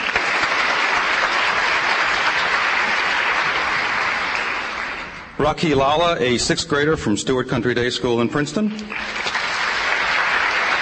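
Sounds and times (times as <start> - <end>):
audience clapping: 0.0 - 5.4, 8.8 - 10.8
speech: 5.4 - 9.3.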